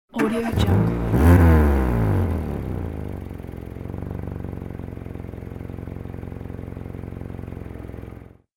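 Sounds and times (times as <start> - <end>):
car ignition rattling: 0.1 - 1.7.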